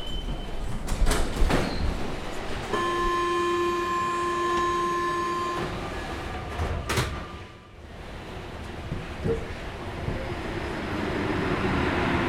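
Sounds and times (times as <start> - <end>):
metro train rumbling underground south of Montrouge: 0.0 - 12.2.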